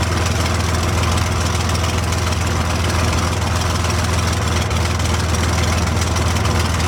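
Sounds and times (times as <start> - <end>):
P40 propeller plane engine idling heard from the interior: 0.0 - 6.8.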